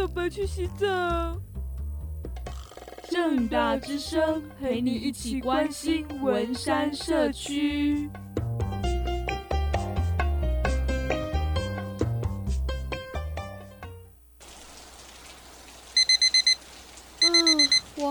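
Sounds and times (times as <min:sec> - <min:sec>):
speech: 0:00.0 - 0:01.5, 0:03.1 - 0:08.7
music: 0:00.0 - 0:14.2
rain falling with a steady soft hiss: 0:14.4 - 0:18.0
electronic alarm beeps: 0:16.0 - 0:16.6, 0:17.2 - 0:17.8.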